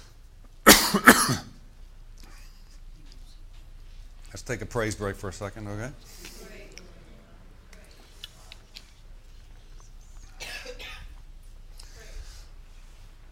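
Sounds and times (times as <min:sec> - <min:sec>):
low steady hum: 0:00.0 - 0:13.3
person clearing throat: 0:00.7 - 0:01.6
person coughing: 0:00.7 - 0:01.6, 0:10.4 - 0:11.2
speech: 0:00.9 - 0:01.5, 0:04.3 - 0:06.4.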